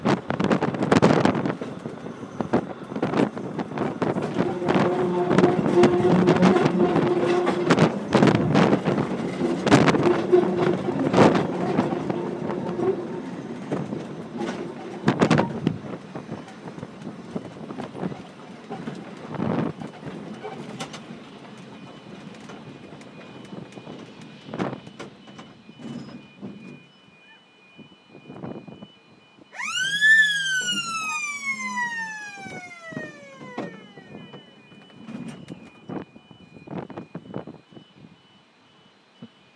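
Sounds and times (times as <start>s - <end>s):
rail rumble and clatter: 0.0s - 27.0s, 30.7s - 37.9s
level crossing alarm ringing: 2.8s - 39.5s
multi-toned train horn blast: 4.4s - 7.9s.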